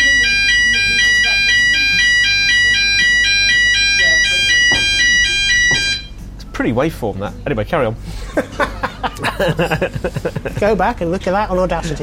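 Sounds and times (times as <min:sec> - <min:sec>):
fire alarm blaring in shrill electronic pulses: 0:00.0 - 0:06.3
speech: 0:06.6 - 0:08.7, 0:09.3 - 0:12.0
laughter: 0:08.1 - 0:11.0.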